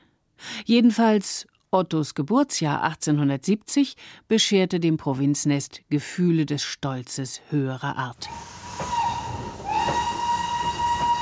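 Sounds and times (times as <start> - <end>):
speech: 0.7 - 8.6
train rumbling along the rails: 8.2 - 11.2
sustained high steam whistle: 8.3 - 11.2
rhythmic clacking of train wheels: 8.7 - 11.2.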